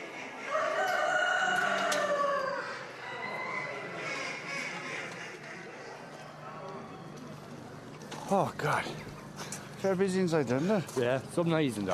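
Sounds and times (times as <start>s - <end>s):
other poultry clucking and crowing at a poultry show: 0.0s - 6.6s
rooster crowing in a cage at a poultry show: 0.5s - 4.0s
speech: 8.3s - 9.2s, 9.8s - 11.9s.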